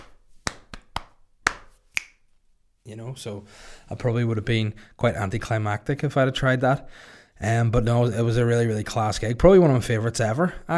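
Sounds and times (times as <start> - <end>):
hands drumming on own chest: 0.0 - 2.3
speech: 2.9 - 10.7.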